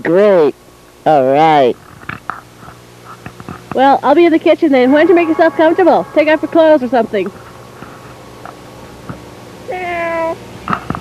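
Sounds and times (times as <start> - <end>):
speech: 0.0 - 1.9, 3.8 - 7.4
cat meowing: 9.7 - 10.4.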